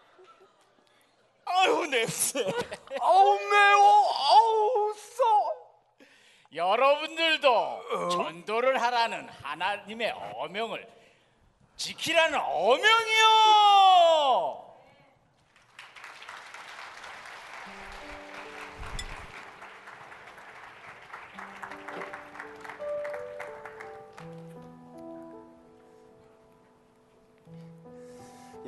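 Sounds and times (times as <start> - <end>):
speech: 1.6 - 5.1, 6.5 - 11.0, 11.8 - 14.7
audience applauding after a skit: 15.4 - 24.7.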